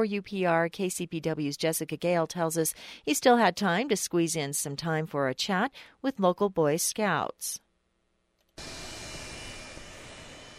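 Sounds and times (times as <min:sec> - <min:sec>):
speech: 0:00.0 - 0:07.6, 0:08.6 - 0:08.9
loud jet engine roar of an airplane: 0:08.6 - 0:10.5.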